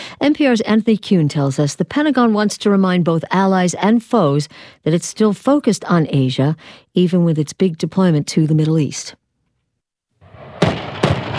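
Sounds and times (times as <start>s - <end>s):
speech: 0.2s - 9.2s
rocket artillery rounds firing from positions in dunes on a shore: 10.2s - 11.3s.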